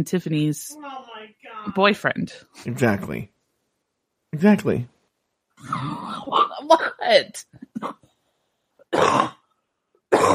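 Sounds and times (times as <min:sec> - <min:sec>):
speech: 0:00.0 - 0:01.0, 0:01.6 - 0:03.3, 0:04.3 - 0:04.9, 0:05.6 - 0:08.0
loud harsh coughs: 0:09.0 - 0:09.3, 0:10.1 - 0:10.3.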